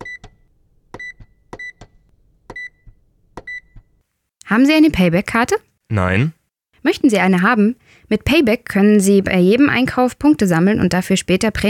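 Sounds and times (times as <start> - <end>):
supermarket checkout barcode scanner beeping: 0.0 - 0.4, 1.0 - 1.9, 2.5 - 3.9
speech: 4.5 - 11.6.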